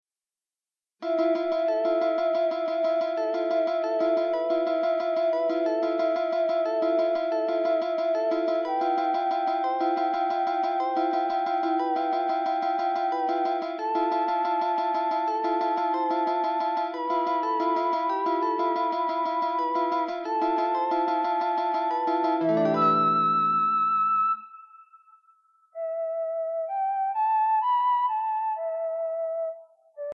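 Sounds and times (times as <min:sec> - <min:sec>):
guitar: 0:01.0 - 0:25.1
flute: 0:01.0 - 0:30.1.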